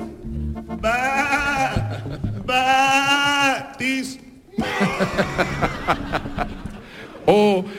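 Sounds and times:
goat bleating: 0:00.8 - 0:03.6
laughter: 0:01.2 - 0:03.5, 0:04.5 - 0:07.6
speech: 0:04.6 - 0:06.2.

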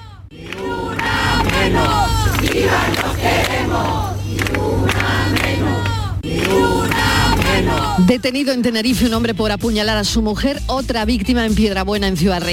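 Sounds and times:
protest rally crowd chanting in El Puerto de Santa María, Cádiz, Spain: 0:00.0 - 0:08.1
low constant rumble: 0:00.0 - 0:12.5
speech: 0:07.7 - 0:12.5.

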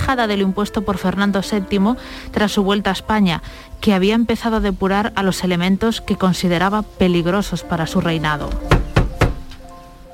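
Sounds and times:
speech: 0:00.1 - 0:08.9
heavy knocking on a door: 0:08.7 - 0:09.5.

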